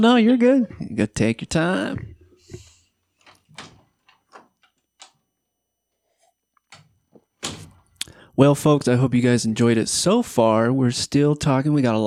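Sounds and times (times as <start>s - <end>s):
speech: 0.0s - 2.1s, 8.4s - 12.0s
door thuds and latch clicks: 3.2s - 5.2s, 6.7s - 8.0s.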